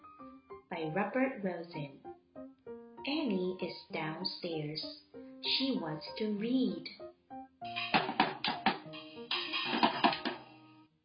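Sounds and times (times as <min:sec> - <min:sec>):
speech: 0:00.8 - 0:02.0, 0:03.0 - 0:07.0
drum banging: 0:07.7 - 0:10.5
sustained musical tones: 0:07.7 - 0:10.8.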